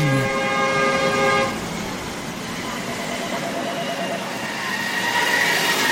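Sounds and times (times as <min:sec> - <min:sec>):
car horns honking in a traffic jam in a Brazilian city: 0:00.0 - 0:01.6
engine and street noise: 0:00.0 - 0:05.9.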